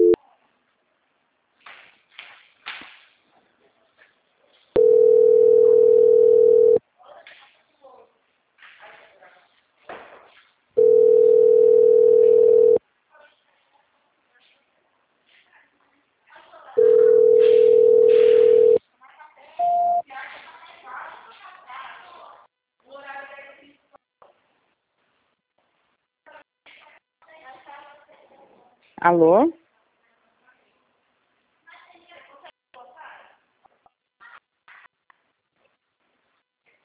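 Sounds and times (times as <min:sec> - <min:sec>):
telephone tone during a call transfer: 0:04.8 - 0:06.8, 0:10.8 - 0:12.8, 0:16.8 - 0:18.8, 0:19.6 - 0:20.0
speech: 0:29.2 - 0:29.6.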